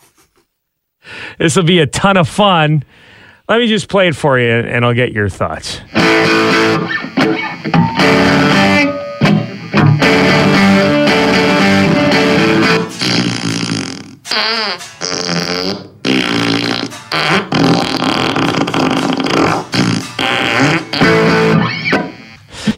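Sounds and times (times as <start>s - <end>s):
speech: 1.4s - 9.0s
guitar playing: 5.9s - 13.3s, 14.7s - 15.1s, 15.8s - 20.2s, 20.8s - 22.4s
fart noises from a fart effects pedal: 5.9s - 22.7s.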